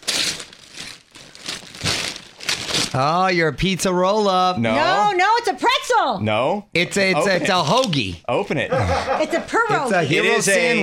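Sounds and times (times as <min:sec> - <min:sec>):
Santa-print gift wrapping paper crinkling and tearing: 0:00.0 - 0:03.2
speech: 0:02.9 - 0:10.8
laughter: 0:08.6 - 0:10.8.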